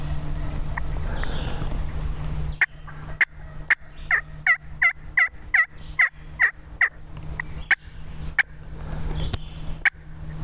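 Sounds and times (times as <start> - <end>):
steady low hum outdoors: 0.0 - 10.4
wild turkey hen's sharp irregular cutting clucks: 2.5 - 8.6, 9.3 - 10.1
wild turkey gobbling in a rapid rattling burst: 2.6 - 7.8, 8.4 - 8.6.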